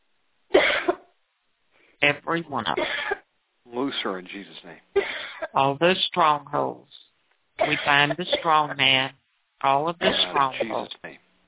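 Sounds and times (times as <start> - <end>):
person coughing during a deliverance prayer: 0.6 - 1.0, 2.8 - 3.2, 5.0 - 5.5, 7.6 - 8.8, 10.0 - 11.0
speech: 2.0 - 7.0, 7.6 - 11.0.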